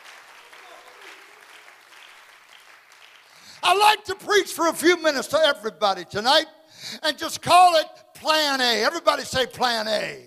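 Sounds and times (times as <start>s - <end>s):
audience clapping hands to praise the Lord: 0.0s - 4.1s
speech: 3.6s - 10.2s.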